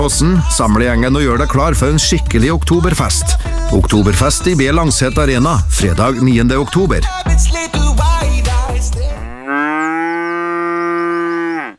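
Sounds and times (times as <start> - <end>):
speech: 0.0 - 8.0
cow mooing on open pasture: 9.0 - 11.7.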